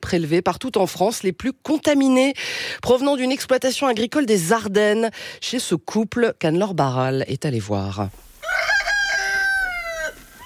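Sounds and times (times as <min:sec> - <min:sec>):
speech: 0:00.1 - 0:08.3
rooster crowing among hens on a rural property in the Ardennes, France: 0:08.4 - 0:10.4.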